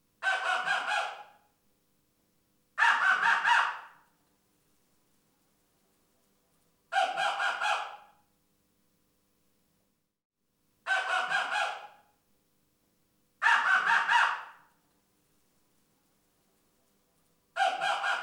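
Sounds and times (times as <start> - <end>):
male fox barking in rut: 0.2 - 1.3, 2.8 - 3.9, 7.0 - 8.1, 10.9 - 12.0, 13.4 - 14.6, 17.6 - 18.2.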